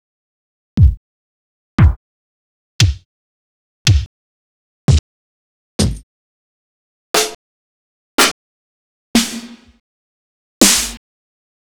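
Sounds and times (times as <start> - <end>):
vinyl bass drum: 0.8 - 1.0, 2.8 - 3.0, 3.9 - 4.1
vinyl snare drum: 9.2 - 9.8, 10.7 - 11.0.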